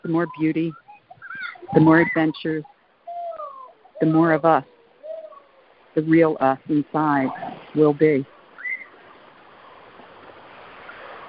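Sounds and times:
speech: 0.0s - 0.8s, 1.7s - 2.7s, 4.0s - 4.7s, 6.0s - 8.3s
ocean waves washing onto the shore: 0.0s - 11.2s
faint chirp: 0.3s - 5.7s, 8.6s - 9.1s.

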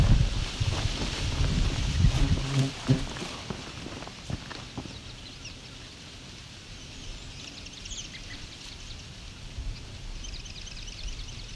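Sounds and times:
footsteps crunching along a trail: 0.0s - 5.5s
trembling aspen leaves rustling in little wind: 0.0s - 10.2s.

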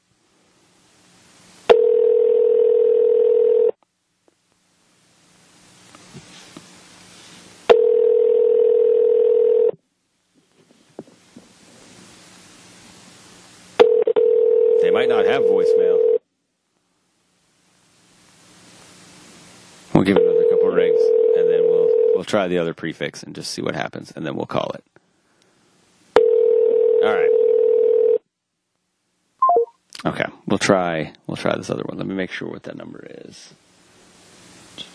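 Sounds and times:
telephone ringback tone on a dialed call: 1.7s - 3.8s, 7.7s - 9.8s, 13.8s - 16.2s, 20.1s - 22.2s, 26.2s - 28.2s, 29.4s - 29.7s
speech: 22.3s - 24.9s, 30.7s - 33.6s.

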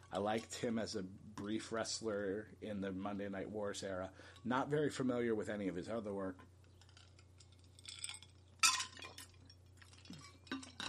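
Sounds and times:
low steady hum: 0.0s - 10.8s
speech: 0.1s - 6.5s
ice cubes knocking against a glass: 7.7s - 10.8s.

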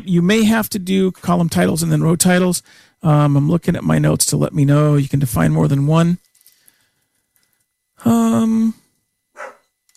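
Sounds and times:
speech: 0.0s - 6.3s, 8.0s - 8.8s
dog barking: 9.4s - 9.7s.

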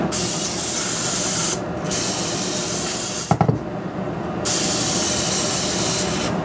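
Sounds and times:
can of cooking oil spray hissing on pan and foil: 0.1s - 3.3s, 4.5s - 6.4s.

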